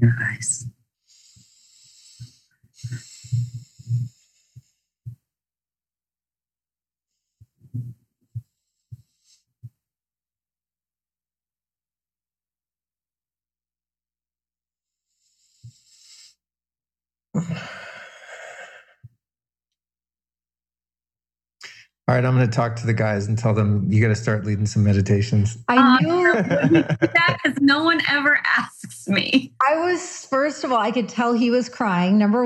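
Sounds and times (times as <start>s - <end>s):
speech: 0.0s - 0.8s, 22.1s - 32.4s
deep breathing during a guided meditation: 1.1s - 5.0s, 17.4s - 19.1s
soft low thumps: 2.2s - 5.2s, 7.6s - 9.0s
laughter: 25.7s - 28.0s.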